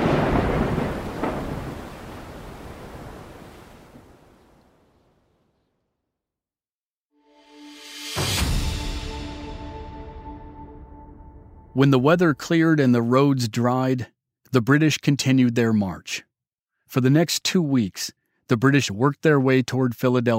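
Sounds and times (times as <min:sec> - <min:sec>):
rain-like rush: 0:00.0 - 0:05.0
loud thunder rumbling: 0:00.0 - 0:05.2
sustained roar of storm noise: 0:00.0 - 0:05.3
speech: 0:11.8 - 0:16.3, 0:16.9 - 0:20.3.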